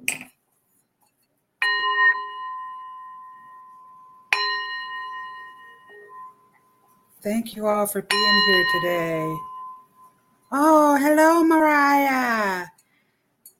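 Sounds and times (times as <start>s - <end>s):
singing bowl struck and ringing: 1.6s - 7.2s, 8.1s - 10.6s
speech: 7.2s - 9.5s, 10.5s - 12.8s.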